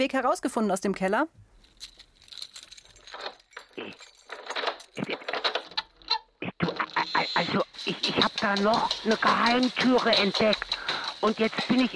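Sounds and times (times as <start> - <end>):
speech: 0.0 - 2.1, 7.4 - 11.9
keys jangling while unlocking a door: 1.6 - 6.2.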